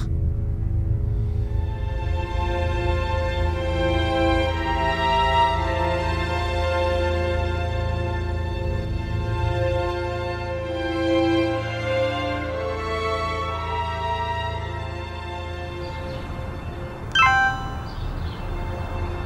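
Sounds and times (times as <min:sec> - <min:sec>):
steady droning musical background: 0:00.0 - 0:19.2
electronic phone message notification chime: 0:17.2 - 0:18.2.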